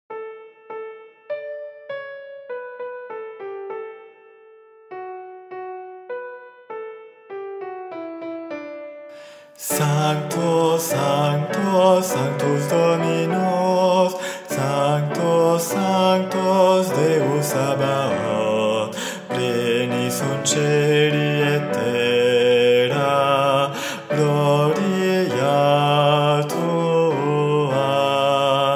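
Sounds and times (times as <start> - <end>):
alto voices singing a guide part of a sacred choral piece: 9.6 - 28.7.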